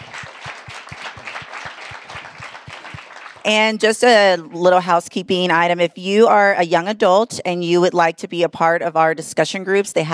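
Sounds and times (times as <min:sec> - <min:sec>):
audience applauding: 0:00.0 - 0:03.9
speech: 0:03.4 - 0:10.1.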